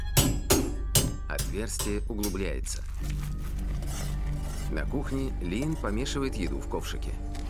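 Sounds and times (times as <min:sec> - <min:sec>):
hammer striking a metal skewer held against a crack in a wall: 0:00.2 - 0:02.5
speech: 0:01.5 - 0:03.5, 0:04.7 - 0:07.3.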